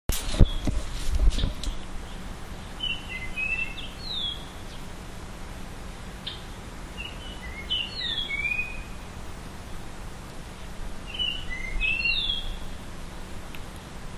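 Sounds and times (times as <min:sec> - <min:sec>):
constant low hum: 0:00.1 - 0:14.1
Japanese grosbeak singing fluty whistled phrases: 0:01.7 - 0:04.9, 0:06.2 - 0:09.0, 0:11.0 - 0:12.8.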